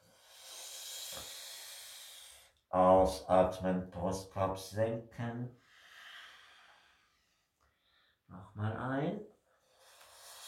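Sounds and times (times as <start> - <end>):
slow breath drawn in through a rolled tongue: 0.0 - 2.6, 5.6 - 8.2, 9.6 - 10.4
speech: 2.7 - 5.6, 8.4 - 9.3.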